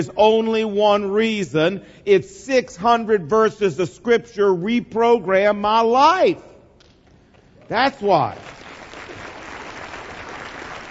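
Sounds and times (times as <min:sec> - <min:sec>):
speech: 0:00.0 - 0:06.5, 0:07.7 - 0:08.6
church audience clapping: 0:07.3 - 0:10.8.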